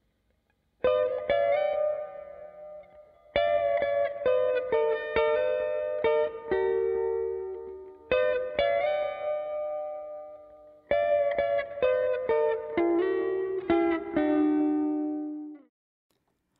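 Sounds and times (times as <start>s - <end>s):
clean electric guitar lead through analog delay pedal: 0.8s - 15.7s.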